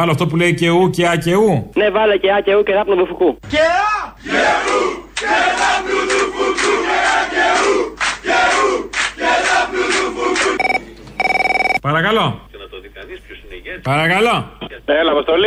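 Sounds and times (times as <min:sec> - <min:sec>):
speech: 0:00.0 - 0:09.6, 0:11.8 - 0:12.4, 0:13.1 - 0:15.4
large crowd chanting a rousing partisan battle song: 0:04.2 - 0:10.6
telephone ringing: 0:10.6 - 0:11.8.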